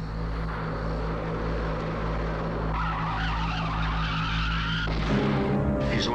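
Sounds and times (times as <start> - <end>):
car engine droning roar: 0.1 - 6.1
car tires skidding and screeching after a tire blowout: 2.2 - 5.5.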